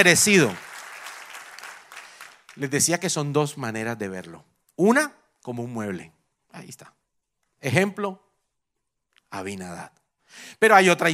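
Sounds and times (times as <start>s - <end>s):
speech: 0.0s - 0.7s, 2.6s - 7.0s, 7.6s - 8.2s, 9.3s - 11.1s
crowd applauding: 0.0s - 2.9s.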